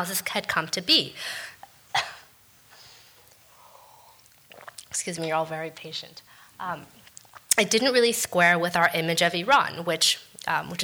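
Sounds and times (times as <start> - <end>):
speech: 0.0 - 1.5, 5.0 - 7.0, 7.6 - 10.8
sharp harsh cough: 1.9 - 2.3.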